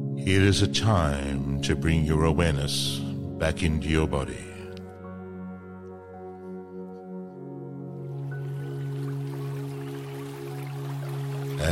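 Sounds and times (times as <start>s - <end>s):
speech: 0.2s - 4.5s
running water: 8.2s - 11.7s.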